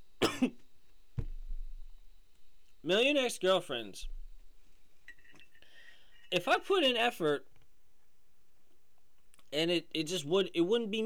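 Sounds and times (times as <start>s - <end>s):
person coughing: 0.2s - 0.6s
speech: 0.4s - 0.6s, 2.8s - 4.2s, 6.3s - 7.5s, 9.5s - 11.0s.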